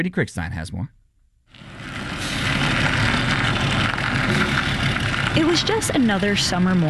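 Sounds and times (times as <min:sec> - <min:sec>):
speech: 0:00.0 - 0:01.7, 0:05.4 - 0:06.8
heavy delivery truck rumbling over cobblestone street: 0:01.5 - 0:06.8.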